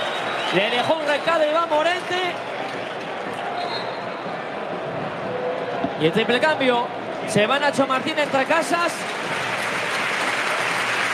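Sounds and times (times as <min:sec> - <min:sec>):
large stadium crowd applauding: 0:00.0 - 0:03.6, 0:07.8 - 0:11.1
large stadium crowd cheering: 0:00.0 - 0:11.1
speech: 0:00.5 - 0:02.8, 0:06.0 - 0:09.3.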